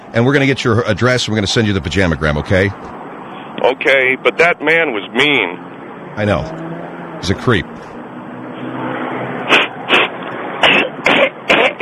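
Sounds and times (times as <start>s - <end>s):
speech: 0.1s - 3.0s, 3.6s - 7.9s
person blowing nose: 9.5s - 11.8s.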